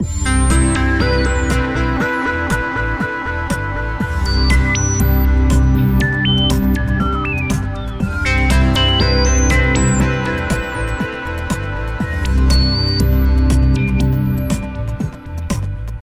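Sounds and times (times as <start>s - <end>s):
ambient tone: 0.0s - 15.5s.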